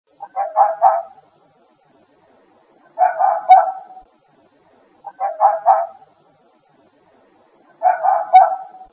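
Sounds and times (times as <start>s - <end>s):
fox calling: 0.2s - 1.3s, 2.8s - 4.1s, 5.0s - 6.1s, 7.7s - 8.9s.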